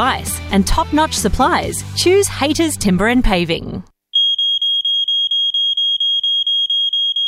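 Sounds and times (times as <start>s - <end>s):
speech: 0.0s - 3.9s
smoke alarm beeping: 4.1s - 7.2s.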